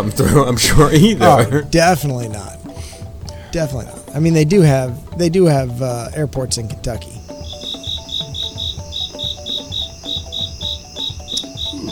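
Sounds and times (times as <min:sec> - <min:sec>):
speech: 0:00.0 - 0:02.6, 0:03.5 - 0:07.3
crickets chirping: 0:07.1 - 0:11.9.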